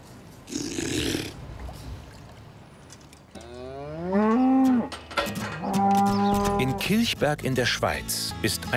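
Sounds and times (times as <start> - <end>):
cow mooing: 3.4 - 5.0, 5.6 - 7.0
speech: 6.7 - 8.7.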